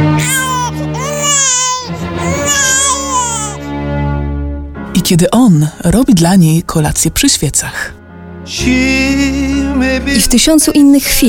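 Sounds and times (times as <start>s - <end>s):
baby crying, unable to fall asleep: 0.2s - 3.7s
speech: 5.1s - 11.2s.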